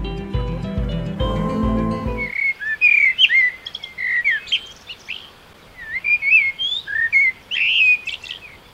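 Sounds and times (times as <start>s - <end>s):
music: 0.0s - 2.3s
urban birds singing: 2.1s - 8.7s.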